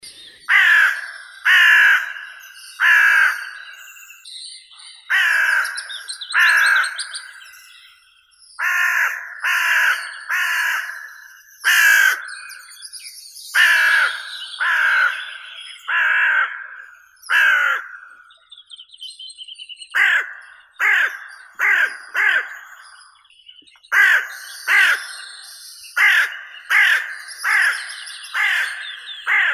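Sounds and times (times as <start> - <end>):
carrion crow Corvus corone calling: 0.5 - 3.4, 5.1 - 5.8, 8.6 - 12.3, 13.6 - 18.3, 20.0 - 22.8, 23.9 - 25.0, 26.0 - 29.5.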